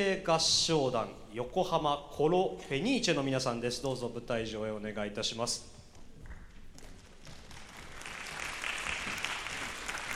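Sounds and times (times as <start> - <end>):
speech: 0.0 - 5.8
audience applause with many hands clapping: 7.2 - 10.1.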